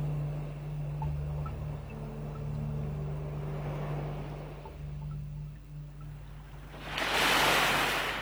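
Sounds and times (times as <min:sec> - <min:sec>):
waves washing onto a beach with surf rumble: 0:00.1 - 0:05.0, 0:06.4 - 0:08.1
wave breaking with a broad hissing crash: 0:07.0 - 0:08.1.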